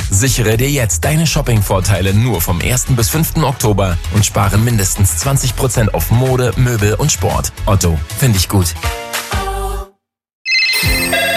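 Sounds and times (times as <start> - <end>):
speech: 0.2 - 9.1
telephone ringing: 10.5 - 11.3.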